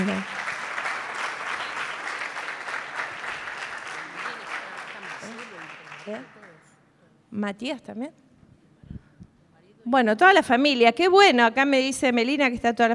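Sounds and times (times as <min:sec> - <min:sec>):
church audience applauding: 0:00.0 - 0:06.8
speech: 0:06.1 - 0:06.4, 0:07.3 - 0:08.2, 0:09.9 - 0:12.9.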